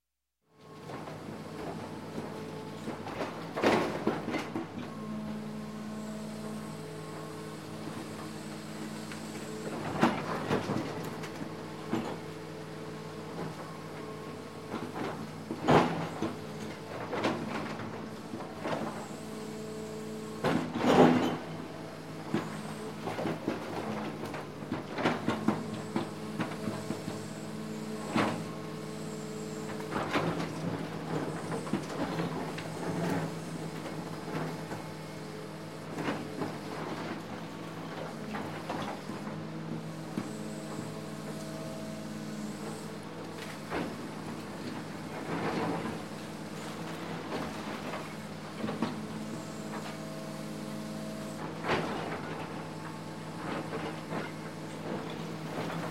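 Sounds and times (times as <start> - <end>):
bulldozer working around a construction site: 0.6 - 55.8.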